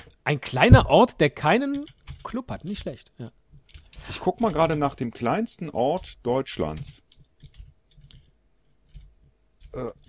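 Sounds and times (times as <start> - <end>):
speech: 0.3 - 3.4, 4.0 - 7.1, 9.7 - 10.0
typing on a computer keyboard: 1.5 - 3.0, 3.6 - 10.0.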